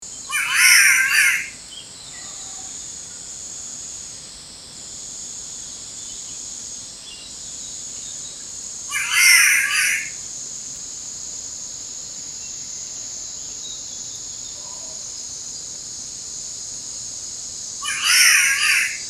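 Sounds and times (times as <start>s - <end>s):
Ailuroedus maculosus spotted catbird calling: 0.2s - 2.7s, 8.9s - 10.2s, 17.8s - 19.0s.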